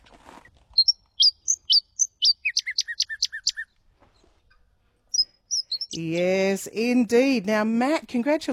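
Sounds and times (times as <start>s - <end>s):
noisy scrub-bird singing loud ringing song: 0.8s - 3.7s, 5.1s - 6.3s
speech: 6.0s - 8.5s.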